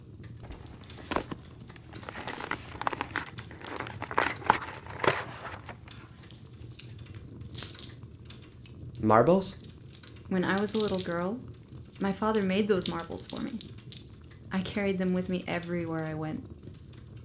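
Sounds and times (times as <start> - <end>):
paper tearing: 0.4 - 6.1
paper crinkling as a gift is unwrapped: 0.4 - 7.0
speech: 9.0 - 9.6, 10.3 - 13.7, 14.5 - 16.6.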